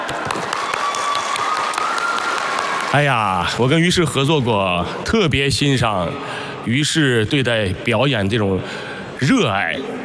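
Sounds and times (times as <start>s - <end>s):
crowd applauding: 0.0s - 3.6s
speech: 2.9s - 10.0s.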